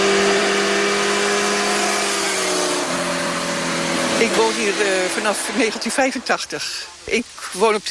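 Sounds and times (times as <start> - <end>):
motorcycles accelerating loudly on a road: 0.0 - 6.3
speech: 4.2 - 7.8.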